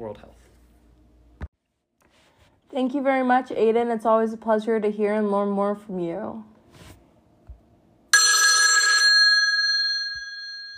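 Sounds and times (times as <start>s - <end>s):
speech: 0.0s - 0.6s, 2.7s - 6.5s
telephone bell ringing for an incoming call: 8.1s - 10.7s.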